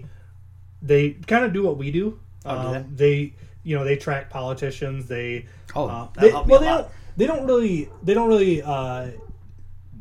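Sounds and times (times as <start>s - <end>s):
speech: 0.8s - 9.2s
dog barking in whiny drawn-out bursts: 7.3s - 9.5s.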